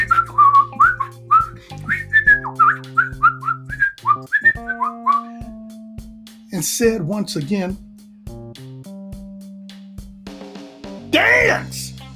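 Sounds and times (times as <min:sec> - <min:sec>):
person whistling a lively bouncing tune: 0:00.0 - 0:05.4
speech: 0:06.6 - 0:07.9.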